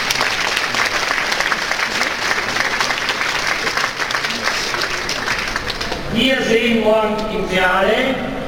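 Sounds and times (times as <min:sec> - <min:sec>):
audience applause at a points-scored competition: 0:00.0 - 0:06.1
speech: 0:06.2 - 0:08.3.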